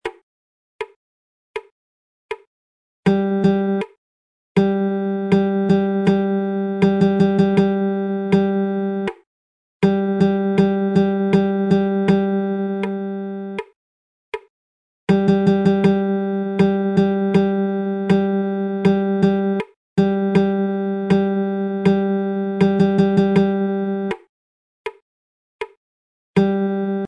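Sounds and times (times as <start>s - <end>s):
guitar strumming: 3.1s - 3.8s, 4.6s - 9.1s, 9.8s - 13.6s, 15.1s - 24.2s, 26.4s - 27.0s.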